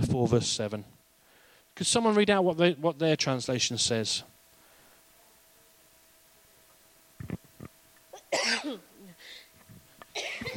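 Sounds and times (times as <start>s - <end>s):
speech: 0.1s - 1.0s, 1.8s - 4.3s
person coughing: 8.2s - 9.4s, 10.1s - 10.5s.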